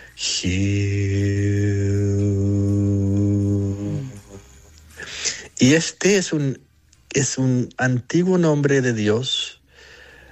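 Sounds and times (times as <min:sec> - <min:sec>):
sung spiritual chant, low-pitched vocal tone: 0:00.0 - 0:05.6
speech: 0:00.2 - 0:01.0, 0:05.7 - 0:09.4.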